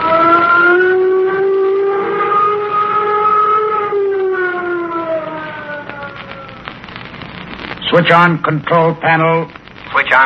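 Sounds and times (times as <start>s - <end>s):
flight warning siren before a nuclear jet flight: 0.0s - 6.7s
speech: 7.9s - 10.2s.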